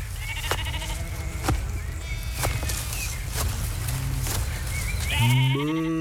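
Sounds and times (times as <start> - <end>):
rustling movement: 0.0 - 5.6
sheep bleating: 0.2 - 1.5, 5.0 - 6.0.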